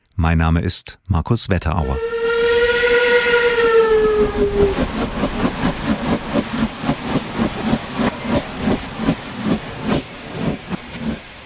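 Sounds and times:
speech: 0.2s - 2.9s, 4.2s - 5.9s
steam locomotive whistle: 1.9s - 4.9s
steam locomotive exhaust chuffing: 2.0s - 11.4s.

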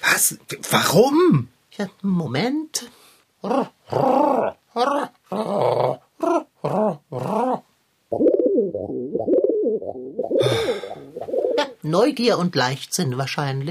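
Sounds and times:
speech: 0.2s - 5.6s, 11.9s - 13.7s
male pigeon cooing trapped inside a garden shed: 6.2s - 11.8s.

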